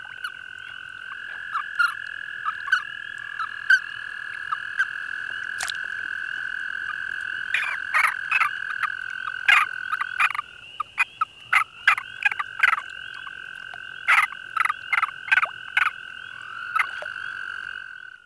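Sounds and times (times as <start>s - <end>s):
American toad breeding chorus trills: 0.0s - 17.6s
American toad squeaky release calls: 1.5s - 3.8s, 5.5s - 5.8s, 6.9s - 15.9s.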